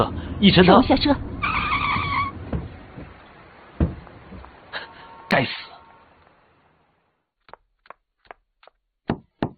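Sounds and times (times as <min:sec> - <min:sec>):
speech: 0:00.0 - 0:01.3
car tires screeching while braking hard: 0:00.5 - 0:05.1
dull thump: 0:02.4 - 0:03.2, 0:03.8 - 0:04.6
firm knocks on a door: 0:02.5 - 0:03.2, 0:03.8 - 0:04.5.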